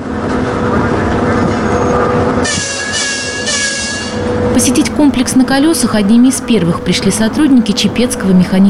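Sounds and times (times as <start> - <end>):
train arriving on rails: 0.0 - 8.6
shrill metallic squeal of wheels or brakes: 1.6 - 4.3
speech: 4.6 - 8.6.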